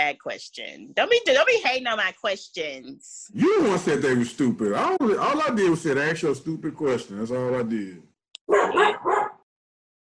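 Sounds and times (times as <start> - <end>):
speech: 0.0 - 9.2
dog barking in the background: 8.4 - 9.4.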